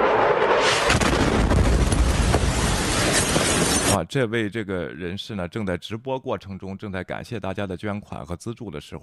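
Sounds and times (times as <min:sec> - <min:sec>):
bomb explosion in Kharkiv during a live stream: 0:00.0 - 0:03.9
speech: 0:04.0 - 0:09.0.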